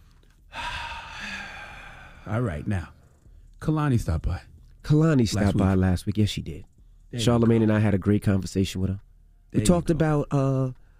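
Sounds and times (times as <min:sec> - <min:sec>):
person inhaling deeply: 0:00.5 - 0:02.3
speech: 0:02.3 - 0:03.0, 0:03.6 - 0:10.8.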